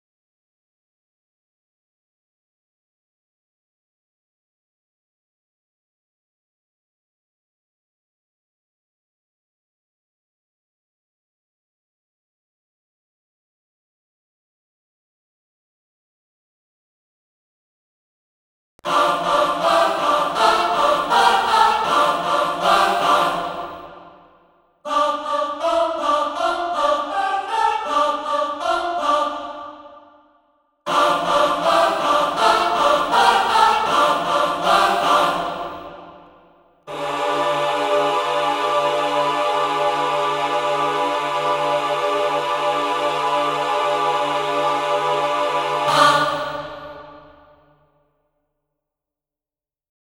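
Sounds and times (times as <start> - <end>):
choirs singing: 18.8 - 30.3, 30.9 - 47.7.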